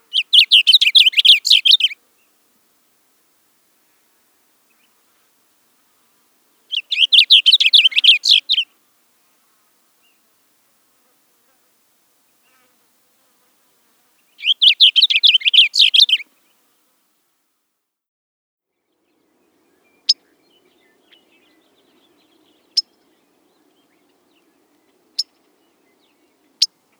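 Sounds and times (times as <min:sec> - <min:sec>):
Blue Grosbeak: 0:00.0 - 0:02.4, 0:06.6 - 0:08.8, 0:14.2 - 0:16.3, 0:19.1 - 0:26.9.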